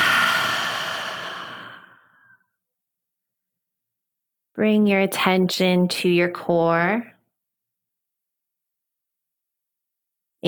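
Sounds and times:
person exhaling during a guided relaxation exercise: 0.0 - 2.4
speech: 4.6 - 7.1.

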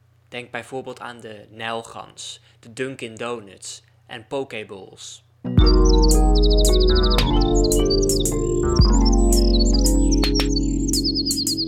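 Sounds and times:
speech: 0.3 - 9.2
rose-ringed parakeet calls: 5.7 - 11.6.

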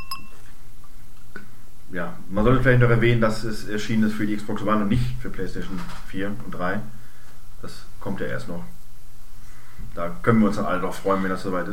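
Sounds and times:
glasses clinking in a toast: 0.0 - 0.4
speech: 1.9 - 7.0, 7.6 - 8.8, 10.0 - 11.7.

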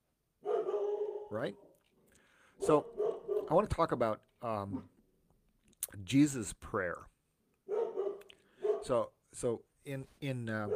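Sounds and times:
puppy barking: 0.4 - 1.7, 2.6 - 3.6, 7.7 - 9.0
speech: 1.3 - 1.7, 2.6 - 4.9, 5.8 - 7.1, 8.8 - 10.7.

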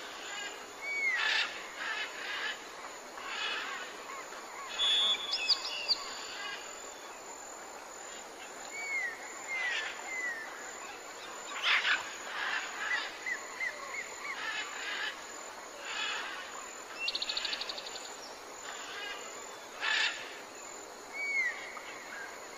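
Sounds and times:
faint high hiss: 0.0 - 22.5
birds chirping and whistling: 4.8 - 6.2.

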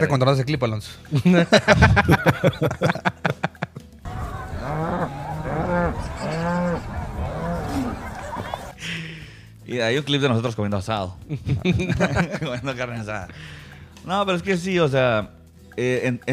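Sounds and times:
speech: 0.0 - 3.1, 9.8 - 16.3
laughter: 1.2 - 9.0, 11.3 - 13.3
cows mooing in La Gomera Escuintla: 4.1 - 8.8.

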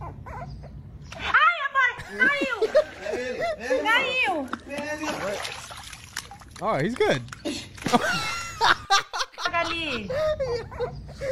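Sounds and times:
small dog whimpering yip: 0.0 - 0.8, 10.6 - 11.2
laughter: 2.0 - 4.3, 7.5 - 11.3
speech: 2.1 - 2.8, 3.6 - 5.6, 6.6 - 8.8, 9.8 - 11.3.

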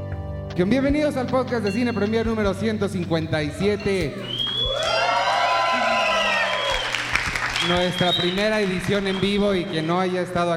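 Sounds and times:
speech: 0.6 - 5.0, 7.6 - 10.5
large live audience at a cinema cheering and shouting: 3.2 - 8.2
scattered clapping: 4.0 - 10.5.

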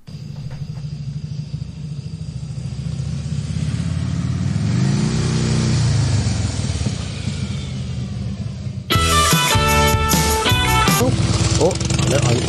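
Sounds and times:
motorcycle engine revving: 0.0 - 12.4
music: 8.9 - 11.2.

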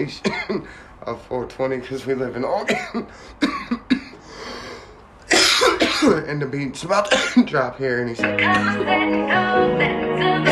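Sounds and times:
speech: 0.0 - 3.9, 6.0 - 10.4
person coughing: 0.2 - 0.8, 2.6 - 4.3, 5.3 - 6.2, 7.1 - 7.5.

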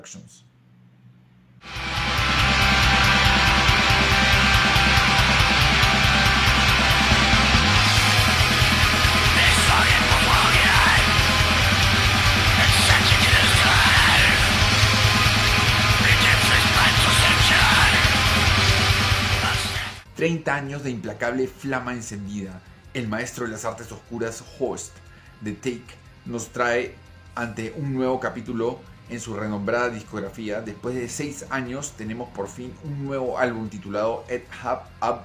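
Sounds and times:
speech: 0.0 - 0.5, 20.2 - 35.2
dense heavily distorted metal music: 1.6 - 35.2
harsh demonic screamed vocals: 6.4 - 20.0.

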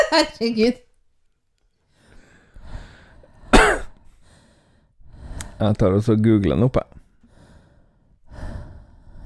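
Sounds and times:
speech: 0.2 - 0.9, 5.6 - 7.0
exaggerated heavy breathing into the microphone: 1.9 - 5.6, 7.1 - 9.2.

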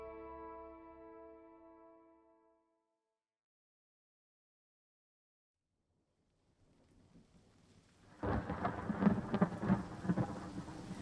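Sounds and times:
loud dense rain: 8.1 - 11.0
low rumbling thunder: 8.2 - 11.0.

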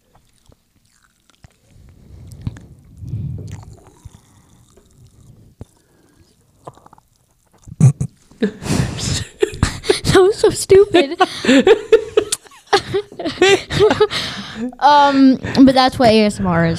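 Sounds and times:
popping candy crackling in the mouth: 0.0 - 1.8, 3.5 - 7.8
soft wet mouth and chewing sounds: 0.0 - 8.4
laughter: 7.8 - 14.2
speech: 8.4 - 9.2, 10.6 - 12.0, 14.6 - 16.7.

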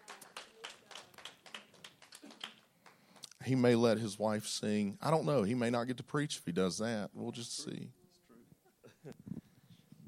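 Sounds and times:
audience clapping in welcome: 0.0 - 3.4
speech: 3.4 - 8.0.

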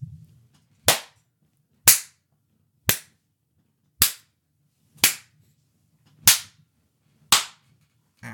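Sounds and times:
loud sharp hand slaps imitating wrestling chops: 0.9 - 1.2, 1.9 - 2.2, 2.9 - 3.2, 4.0 - 4.3, 5.0 - 5.3, 6.3 - 6.6, 7.3 - 7.6.

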